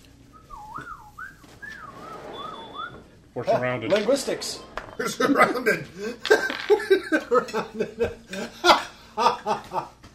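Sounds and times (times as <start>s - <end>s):
person whistling a wavering sliding tune: 0.3s - 3.0s
speech: 3.4s - 10.0s.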